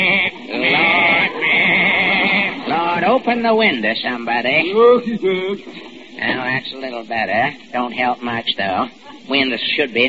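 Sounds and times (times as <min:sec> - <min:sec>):
goat bleating in a courtroom: 0:00.0 - 0:02.6
laughter: 0:00.0 - 0:06.7, 0:08.7 - 0:09.8
speech: 0:03.1 - 0:10.0.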